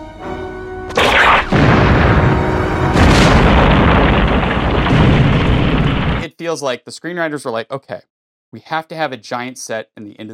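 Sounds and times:
film explosion set off by a solar-powered laser: 0.9s - 6.3s
sustained roaring rumble: 1.0s - 6.2s
speech: 6.4s - 10.3s.

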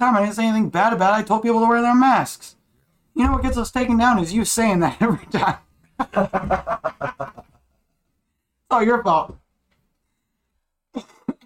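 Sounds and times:
speech: 0.0s - 2.6s, 3.2s - 7.4s, 8.7s - 9.4s
harsh coughs: 10.9s - 11.4s.

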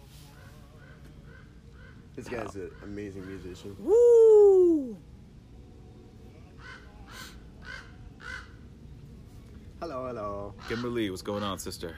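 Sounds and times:
faint noise: 0.0s - 11.9s
crows cawing outdoors: 0.8s - 3.7s, 6.6s - 8.6s, 10.6s - 11.6s
speech: 2.2s - 5.1s, 9.8s - 11.9s.

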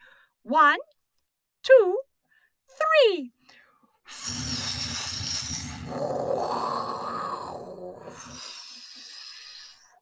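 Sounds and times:
speech: 0.4s - 1.0s, 1.6s - 2.1s, 2.7s - 3.4s, 4.1s - 4.6s, 5.9s - 6.7s
dragon fire-breathing roar in a cave: 4.1s - 9.8s.

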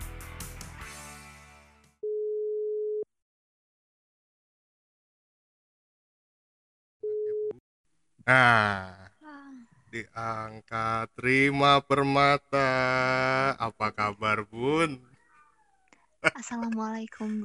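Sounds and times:
phone line ringback tone: 2.0s - 3.0s
speech: 8.2s - 9.0s, 9.9s - 15.1s, 16.2s - 17.4s.

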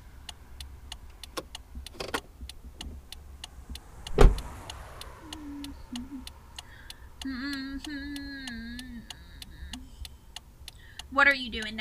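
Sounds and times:
low road rumble inside a moving car: 0.0s - 11.7s
quick even ticking inside a moving car: 0.2s - 11.7s
single thump: 4.1s - 4.5s
speech: 11.2s - 11.7s.

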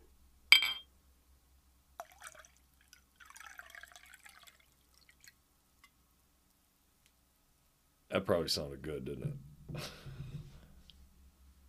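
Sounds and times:
sharp glassy clink: 0.5s - 0.9s
whiskey pouring into a glass: 2.0s - 5.4s
speech: 8.1s - 10.2s.

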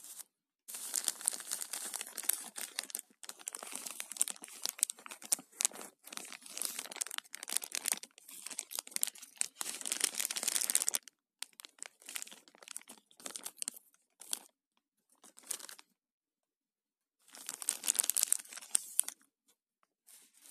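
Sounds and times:
plastic zipper bag crinkling and crackling: 0.7s - 13.5s, 17.3s - 19.1s.

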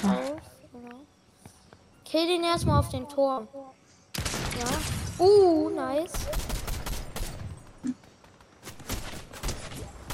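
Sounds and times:
speech: 2.1s - 3.7s, 4.6s - 6.5s
video game gunfire: 6.1s - 7.6s, 8.3s - 10.1s.

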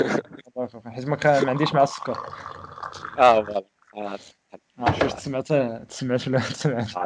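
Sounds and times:
speech: 0.0s - 7.0s
drink pouring into a glass: 1.2s - 3.6s.

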